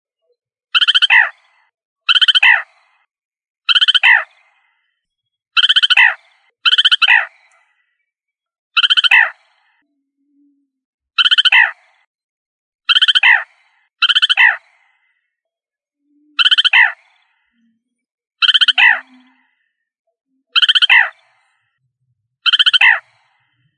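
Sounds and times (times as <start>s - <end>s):
rail giving harsh harmonic calls: 0.7s - 1.4s, 2.1s - 2.8s, 3.7s - 4.6s, 5.6s - 7.5s, 8.8s - 9.8s, 11.2s - 11.8s, 12.9s - 15.0s, 16.3s - 17.6s, 18.4s - 19.6s, 20.6s - 21.3s, 22.4s - 23.3s.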